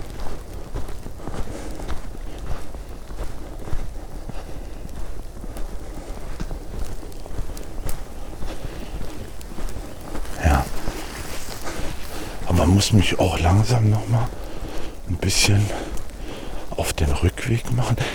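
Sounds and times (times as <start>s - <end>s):
footsteps stomping through a dark forest: 0.0s - 18.1s
windy rustle in a forest: 0.0s - 18.1s
speech: 12.8s - 14.4s, 15.2s - 15.9s, 16.8s - 18.1s.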